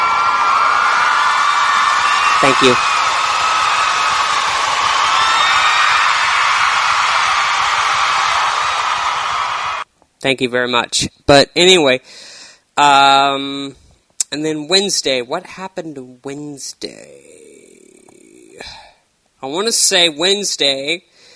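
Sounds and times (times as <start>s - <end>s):
whoops and yells: 0.0s - 9.8s
crowd cheering and applause: 0.0s - 9.9s
speech: 2.4s - 2.9s, 10.2s - 17.4s, 18.6s - 18.8s, 19.4s - 21.1s.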